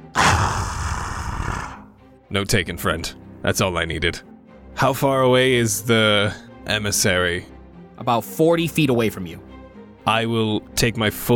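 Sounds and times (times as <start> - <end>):
person imitating a dire wolf bark: 0.0 - 1.9
speech: 2.3 - 11.3.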